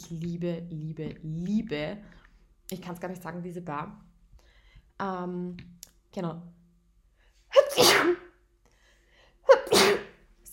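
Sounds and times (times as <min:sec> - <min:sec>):
speech: 0:00.1 - 0:04.1, 0:05.0 - 0:06.6
person sneezing: 0:07.5 - 0:08.3, 0:09.5 - 0:10.2.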